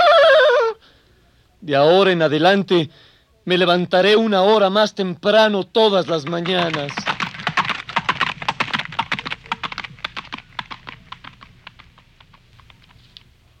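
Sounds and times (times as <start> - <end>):
speech: 1.6 - 7.0
horse's heavy trot clip-clop: 5.8 - 13.5.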